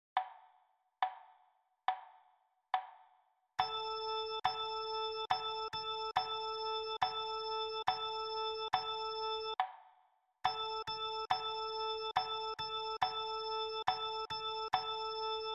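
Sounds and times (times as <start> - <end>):
rhythm practice A note: 3.6 - 9.8, 10.5 - 15.5.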